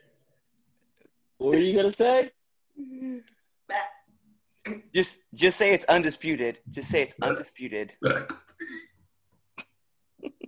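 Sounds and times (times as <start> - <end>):
speech: 1.4 - 3.9, 4.7 - 8.4
guttural sounds: 7.2 - 8.8
person burping: 7.2 - 8.9.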